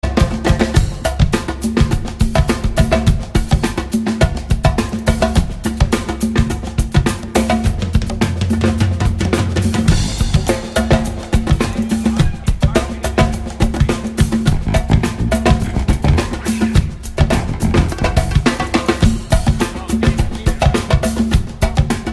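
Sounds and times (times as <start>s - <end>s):
percussion jam: 0.0s - 22.1s.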